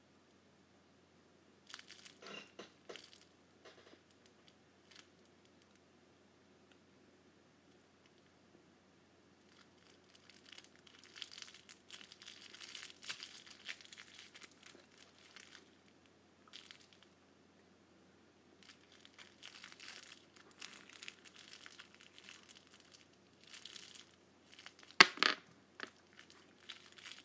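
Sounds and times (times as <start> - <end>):
candy wrappers crinkling and crumpling: 1.7 - 2.2, 2.8 - 3.4, 4.1 - 5.8, 9.4 - 17.2, 18.6 - 27.2.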